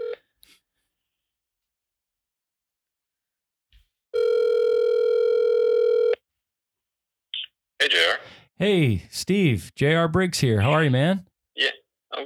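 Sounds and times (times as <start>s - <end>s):
telephone dial tone as a call is placed: 0.0s - 0.2s, 4.2s - 6.2s
speech: 7.9s - 12.2s.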